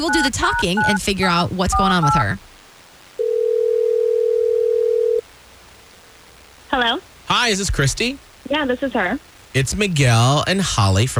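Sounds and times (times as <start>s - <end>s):
speech: 0.0s - 2.5s, 6.8s - 11.1s
telephone dial tone while calling: 3.2s - 5.2s.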